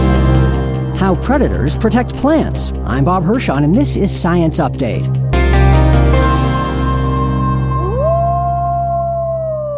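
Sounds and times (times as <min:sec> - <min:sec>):
low droning background: 0:00.1 - 0:08.7
speech: 0:01.0 - 0:05.4
wolf howling: 0:07.7 - 0:09.7.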